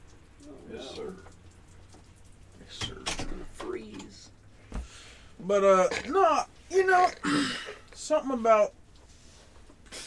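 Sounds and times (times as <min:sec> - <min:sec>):
steady rain pattering: 0:00.0 - 0:10.0
speech: 0:00.5 - 0:01.4, 0:05.5 - 0:08.8.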